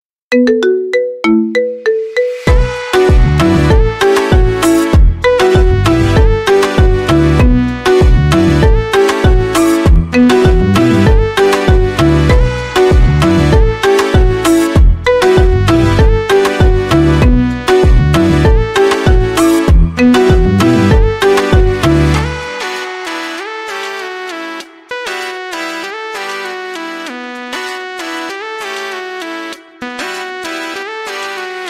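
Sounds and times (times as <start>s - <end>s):
kompa marimba ringtone: 0.3s - 22.9s.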